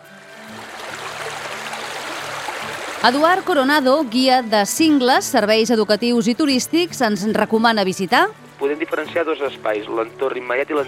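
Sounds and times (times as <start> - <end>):
water flowing from river source springs: 0.0 - 5.3
speech: 3.0 - 10.8.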